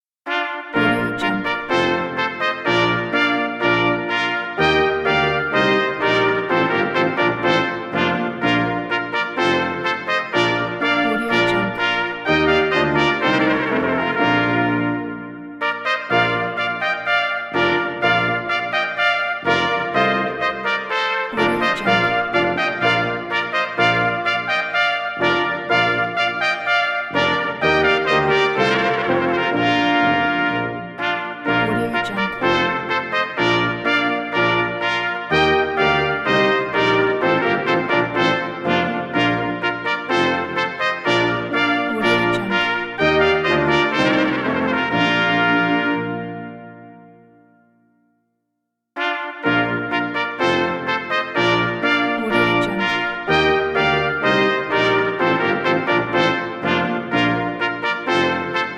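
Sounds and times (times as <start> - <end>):
solemn brass fanfare: 0.3 - 47.4, 49.0 - 58.7.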